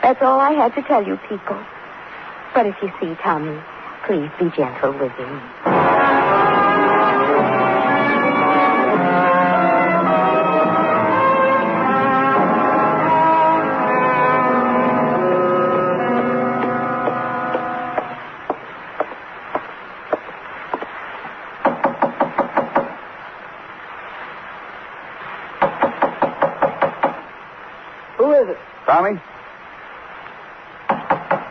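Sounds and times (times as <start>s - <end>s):
speech: 0.0s - 1.8s, 2.5s - 6.4s
sustained tone: 5.7s - 18.3s
police knocking on a door: 16.6s - 20.9s, 21.6s - 23.0s, 25.6s - 27.3s, 30.9s - 31.5s.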